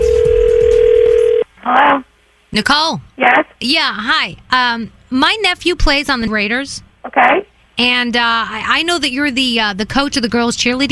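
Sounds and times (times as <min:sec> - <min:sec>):
telephone ring tone heard on the caller's end: 0:00.0 - 0:01.5
speech: 0:02.5 - 0:10.9.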